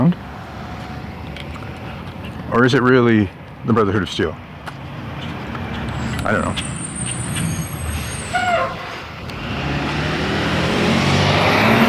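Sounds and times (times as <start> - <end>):
school bus heavy engine rumbling past: 0.0 - 11.8
speech: 2.6 - 4.5, 6.2 - 6.7
school bus air brakes squealing and hissing: 5.8 - 9.1.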